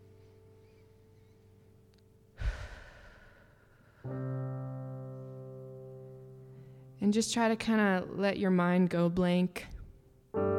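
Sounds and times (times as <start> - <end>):
deep breath released as a loud airy sigh: 2.4 - 4.2
speech: 7.0 - 9.7.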